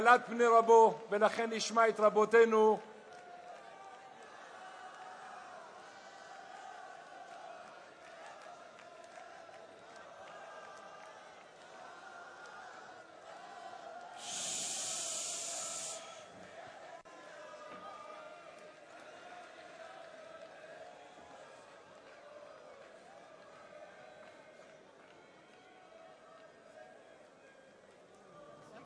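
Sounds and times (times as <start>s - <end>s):
speech: 0.0s - 2.9s
large crowd singing together in a loud chorus: 11.8s - 18.3s
hissing burst of noise: 14.2s - 16.3s.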